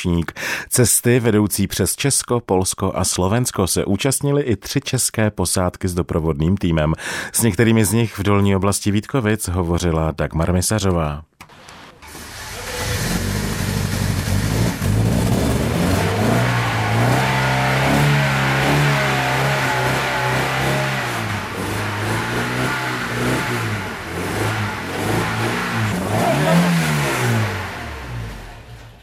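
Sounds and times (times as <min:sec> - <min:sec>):
speech: 0:00.0 - 0:11.6
vintage rally car engine revving: 0:12.0 - 0:29.0.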